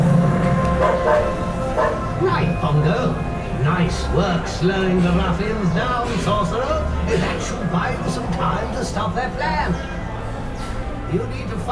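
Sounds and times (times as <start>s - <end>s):
dogs barking aggressively and viciously: 0.0s - 3.6s
dense steady din: 0.0s - 11.7s
speech: 4.2s - 10.0s, 11.1s - 11.7s.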